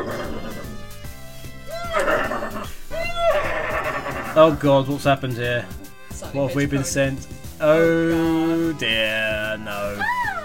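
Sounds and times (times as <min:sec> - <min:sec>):
person imitating a sneaky evil horse whinny: 0:00.0 - 0:01.0, 0:01.7 - 0:04.6
steady musical backing: 0:00.0 - 0:10.4
speech: 0:04.4 - 0:10.2.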